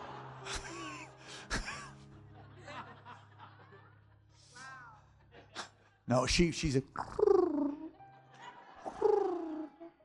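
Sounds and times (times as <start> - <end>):
laughter: 0.0 - 6.0, 7.8 - 10.0
speech: 6.1 - 7.2
woman making soft cat-like purring and cooing noises: 7.0 - 7.9, 8.9 - 9.7.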